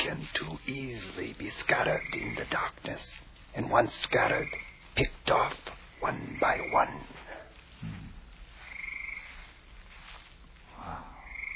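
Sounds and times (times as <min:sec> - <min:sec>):
steady hiss of noise: 0:00.0 - 0:11.5
speech: 0:00.1 - 0:07.2
frog croaking low and throaty in a marsh: 0:01.6 - 0:03.0, 0:03.6 - 0:09.6, 0:10.8 - 0:11.5
thin buzzing frog trill in a marsh: 0:08.7 - 0:09.3.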